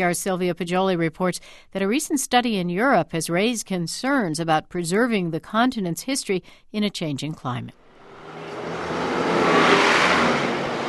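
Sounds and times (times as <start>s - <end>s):
speech: 0.0s - 7.8s
car engine revving: 7.8s - 10.8s
steady broadband roar of passing vehicles on a busy city street: 7.8s - 10.8s.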